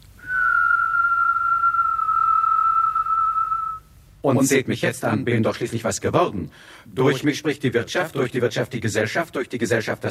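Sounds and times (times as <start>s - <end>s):
faint hiss: 0.0s - 10.1s
person whistling a steady clear tone: 0.2s - 3.9s
speech: 4.2s - 10.1s.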